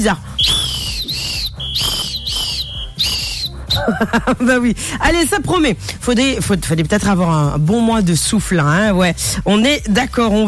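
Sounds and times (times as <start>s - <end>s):
speech: 0.0s - 0.6s, 3.9s - 10.4s
whistle blown in short shrill blasts: 0.3s - 3.9s
laughter: 3.7s - 4.8s.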